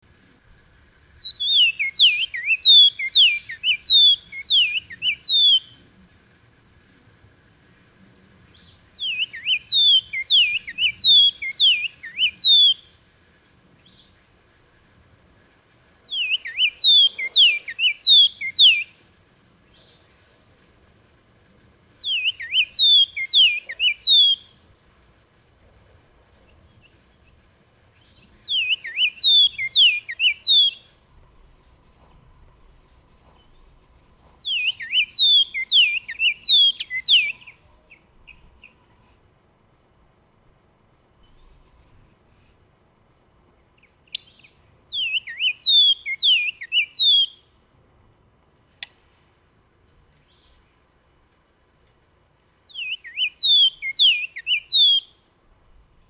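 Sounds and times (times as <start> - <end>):
Bahama oriole Icterus northropi: 0.1 - 24.8, 26.2 - 39.3, 43.6 - 47.5, 52.7 - 55.3.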